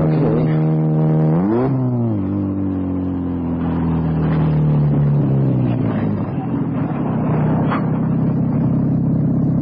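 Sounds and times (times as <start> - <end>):
car engine revving, slowing to a stop and idling: 0.0 - 9.6.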